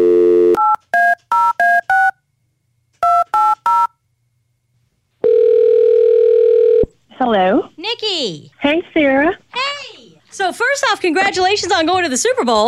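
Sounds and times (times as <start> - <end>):
telephone steady dial tone: 0.0 - 2.1, 5.2 - 6.9
touch-tone keypad beeps: 0.6 - 2.2, 3.0 - 3.9
speech: 8.0 - 9.4, 10.4 - 12.6.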